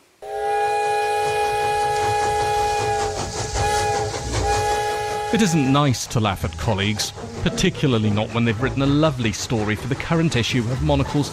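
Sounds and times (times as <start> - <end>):
train's sustained multi-tone horn blaring: 0.2 - 5.9
rhythmic rumble and clatter of train wheels on the rails: 0.4 - 11.3
speech: 5.3 - 11.3.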